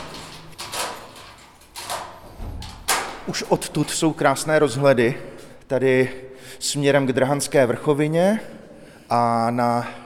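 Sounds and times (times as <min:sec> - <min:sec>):
large lock being unlocked on a sheet-metal door: 0:00.0 - 0:04.2
low thud: 0:02.2 - 0:03.4
speech: 0:03.3 - 0:10.0.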